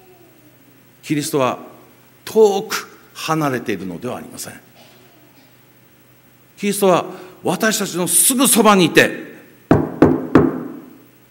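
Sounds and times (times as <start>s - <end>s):
speech: 1.1s - 1.7s, 2.3s - 4.7s, 6.6s - 9.3s
firm knocks on a door: 9.7s - 10.9s.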